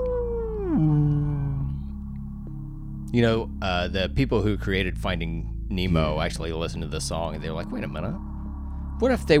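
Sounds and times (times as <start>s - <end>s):
whale-like moaning call in a song: 0.0s - 2.2s
speech: 3.1s - 8.3s, 9.0s - 9.3s.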